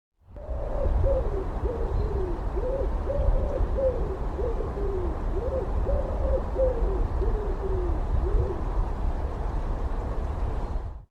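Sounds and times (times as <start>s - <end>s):
bird hooting: 0.4s - 8.6s
loud constant rumbling hiss: 0.4s - 11.0s.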